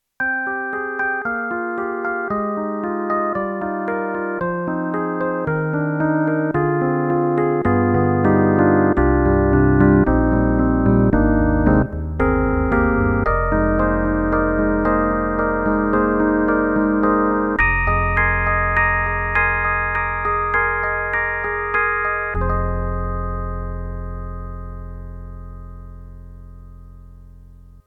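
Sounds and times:
Yamaha MU1000EX Easy EP electric piano: 0.2 - 27.8.

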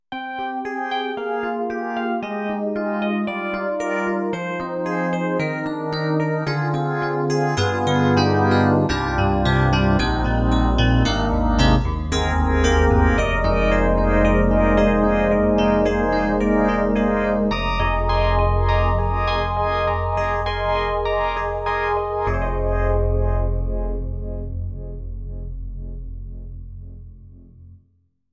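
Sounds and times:
solo FM hard electric piano with phase effect on synthesizer: 0.1 - 27.8.

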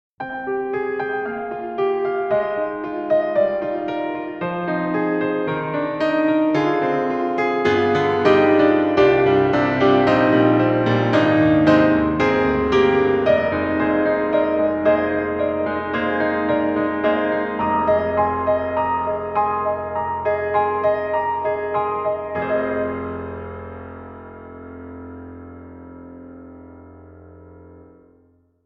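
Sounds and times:
piano on default settings with built-in reverb: 0.2 - 28.6.

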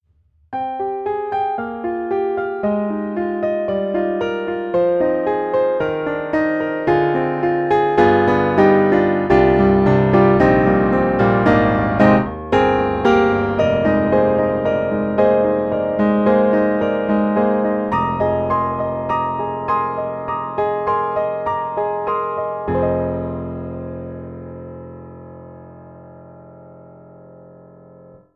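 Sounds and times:
clean piano playing: 0.5 - 28.3.

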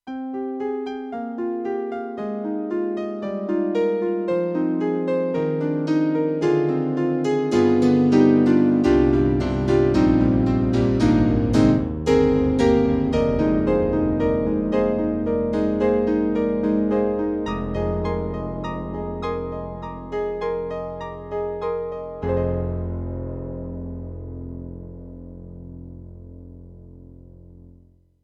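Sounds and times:
Roland JV-2080 synthesizer piano: 0.0 - 27.8.

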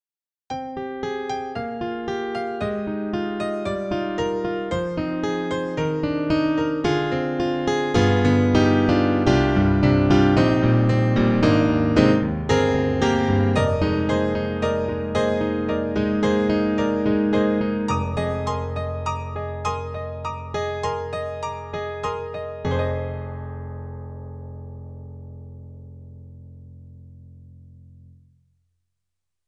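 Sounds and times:
synthesizer jazz grand piano sound: 0.5 - 28.3.

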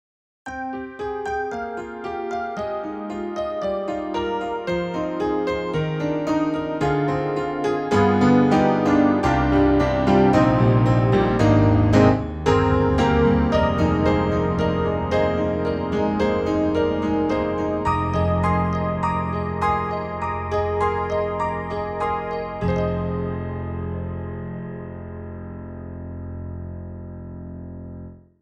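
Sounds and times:
ballad piano on a Yamaha MOTIF-RACK XS: 0.5 - 28.3.

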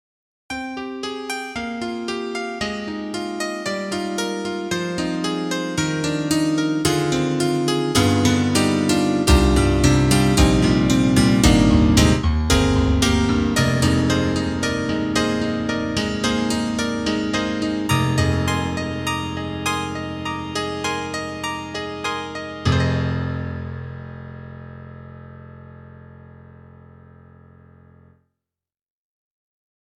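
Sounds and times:
synthesizer M1 piano sound: 0.5 - 28.0.

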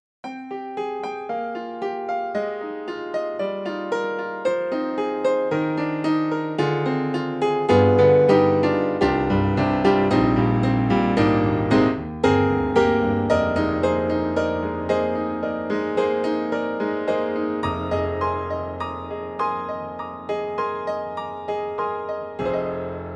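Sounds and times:
KORG KRONOS 2 Japanese Bright Grand piano: 0.2 - 23.1.

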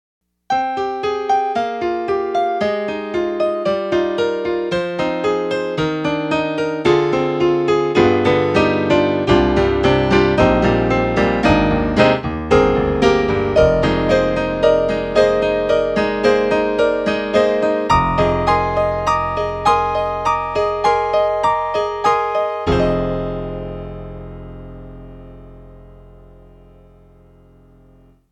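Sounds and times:
YAMAHA TG55 synthesizer rock piano: 0.5 - 28.2.

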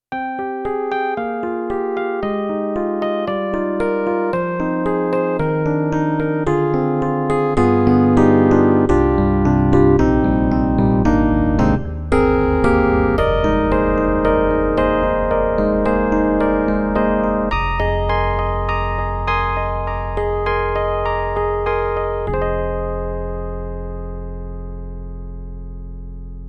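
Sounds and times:
Yamaha MU90 electric piano: 0.1 - 26.4.

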